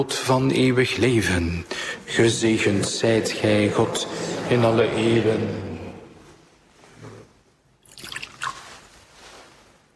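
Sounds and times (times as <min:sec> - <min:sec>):
speech: 0:00.0 - 0:05.7
water poured into wine in a chalice during a church liturgy: 0:07.8 - 0:09.0.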